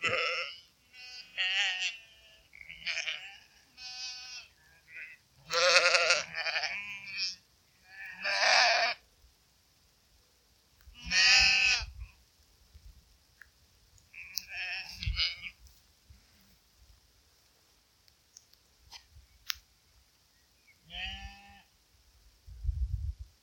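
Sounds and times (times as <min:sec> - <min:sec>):
common sheep bleating: 0:00.0 - 0:09.0, 0:11.0 - 0:11.9, 0:14.1 - 0:15.6, 0:20.9 - 0:21.7.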